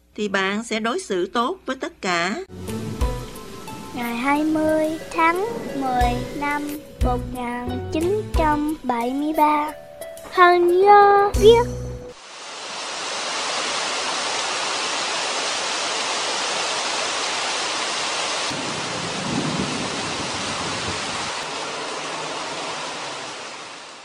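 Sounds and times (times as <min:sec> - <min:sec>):
speech: 0:00.2 - 0:02.7, 0:04.0 - 0:11.8
heavy pouring rain on a hill above Highway 1: 0:02.5 - 0:06.5, 0:12.2 - 0:24.0.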